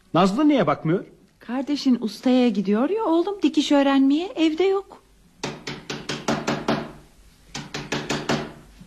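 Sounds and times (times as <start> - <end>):
speech: 0.1 - 5.0
knuckles knocking on a house door: 5.4 - 7.0, 7.6 - 8.6.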